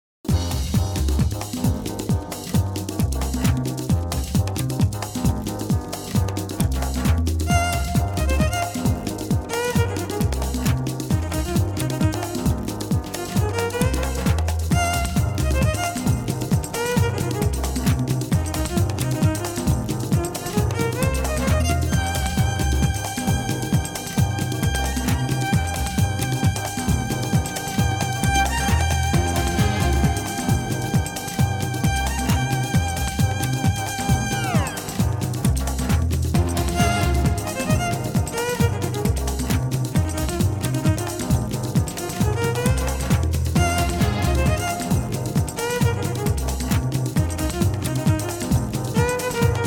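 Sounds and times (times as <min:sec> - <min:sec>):
jazz funk music: 0:00.3 - 0:49.6
violin: 0:07.5 - 0:10.3, 0:13.1 - 0:17.6, 0:18.6 - 0:35.3, 0:36.4 - 0:39.3, 0:42.0 - 0:46.4, 0:47.4 - 0:49.6.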